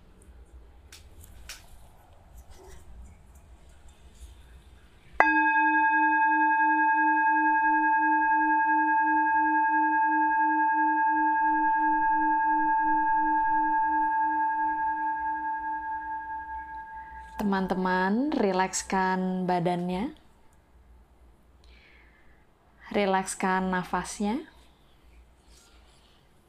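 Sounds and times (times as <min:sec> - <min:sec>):
quiet noise: 0:00.0 - 0:26.4
singing bowl struck for a breathing exercise: 0:05.2 - 0:18.7
speech: 0:17.6 - 0:20.2, 0:23.0 - 0:24.5.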